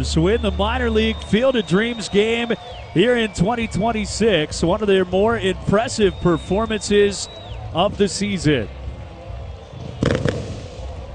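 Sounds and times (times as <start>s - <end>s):
speech: 0.0s - 8.8s
fireworks crackling pops on an evening in Dyersville, Iowa: 10.0s - 10.9s.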